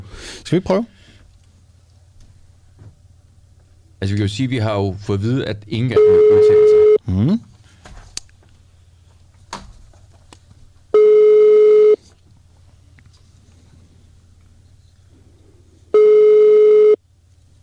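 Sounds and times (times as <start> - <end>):
speech: 0.4 - 1.0, 4.0 - 7.5
electronic telephone ringback tone while calling a press telephone: 6.0 - 7.0, 11.0 - 12.0, 16.0 - 17.0.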